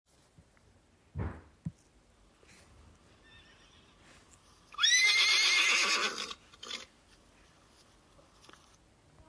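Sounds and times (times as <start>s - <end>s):
horse neighing: 3.2s - 4.0s, 4.7s - 6.9s.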